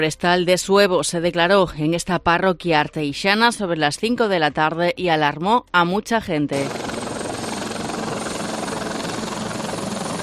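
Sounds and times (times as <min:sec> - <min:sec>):
speech: 0:00.0 - 0:06.8
firefighting helicopter rotor droning overhead: 0:06.5 - 0:10.2.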